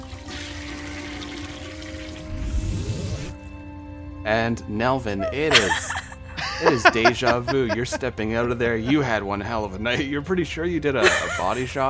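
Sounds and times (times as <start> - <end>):
toilet flushing: 0.0 - 2.7
gurgle of the refilling toilet tank: 0.0 - 3.4
speech: 4.2 - 6.0, 6.6 - 11.8
laughter: 5.2 - 10.2, 11.0 - 11.8.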